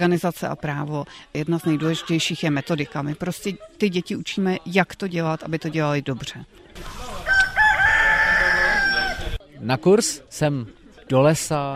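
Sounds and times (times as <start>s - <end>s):
speech: 0.0s - 7.2s, 9.6s - 11.7s
rooster crowing near a forest: 7.0s - 9.4s.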